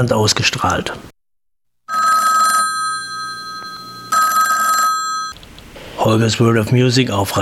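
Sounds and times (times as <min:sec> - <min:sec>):
speech: 0:00.0 - 0:01.1, 0:06.0 - 0:07.4
telephone ringing with electronic trill: 0:01.9 - 0:05.4.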